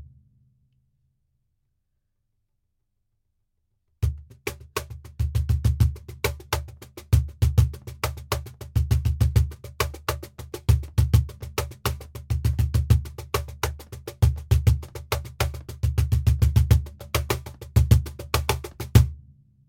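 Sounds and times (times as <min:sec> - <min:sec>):
flamenco cajon playing in a studio: 0:04.1 - 0:19.1.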